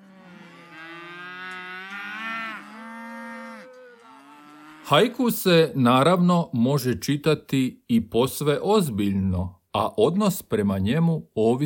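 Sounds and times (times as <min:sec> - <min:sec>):
cow mooing: 0:00.0 - 0:05.1
speech: 0:04.9 - 0:11.6.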